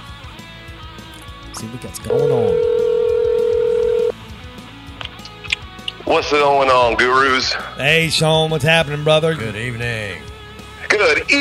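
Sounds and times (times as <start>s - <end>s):
speech: 1.6s - 2.7s, 6.1s - 10.3s, 11.0s - 11.4s
phone ringing tone: 2.1s - 4.1s.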